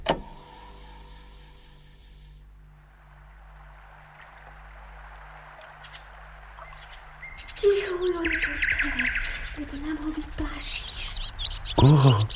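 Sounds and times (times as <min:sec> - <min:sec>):
low steady hum at sunset: 0:00.0 - 0:12.3
nightingale singing at sunset: 0:03.0 - 0:12.3
speech: 0:07.6 - 0:10.9, 0:11.8 - 0:12.3.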